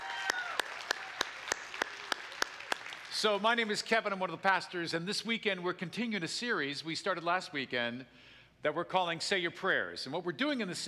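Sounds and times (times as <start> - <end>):
church congregation applause: 0.0 - 3.7
speech: 3.2 - 10.8.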